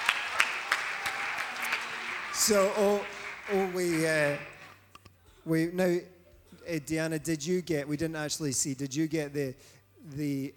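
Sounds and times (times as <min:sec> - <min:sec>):
audience applause: 0:00.0 - 0:04.8
steady evenly spaced claps: 0:00.0 - 0:04.8
room noise: 0:00.0 - 0:10.5
speech: 0:02.4 - 0:04.5, 0:05.5 - 0:10.5.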